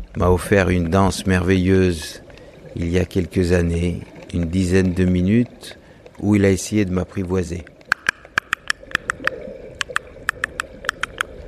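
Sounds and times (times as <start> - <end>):
low watery rumble: 0.0 - 11.4
sperm whale eight-click coda underwater: 0.0 - 11.4
speech: 0.2 - 2.2, 2.8 - 7.7.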